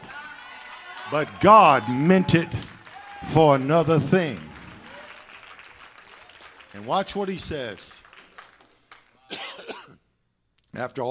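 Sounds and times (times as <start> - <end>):
speech: 1.1 - 4.5, 6.8 - 8.0, 10.8 - 11.0
person coughing: 9.3 - 10.0.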